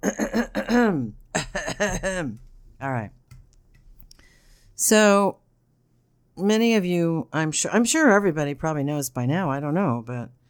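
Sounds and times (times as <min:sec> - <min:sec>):
person clearing throat: 0:00.0 - 0:02.4
speech: 0:00.4 - 0:03.2, 0:04.8 - 0:05.4, 0:06.4 - 0:10.4.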